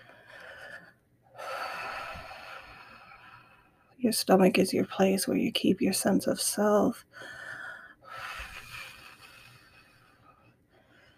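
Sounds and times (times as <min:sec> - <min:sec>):
deep breathing during a guided grief meditation: 0:00.0 - 0:04.0, 0:07.1 - 0:11.1
speech: 0:04.0 - 0:07.4.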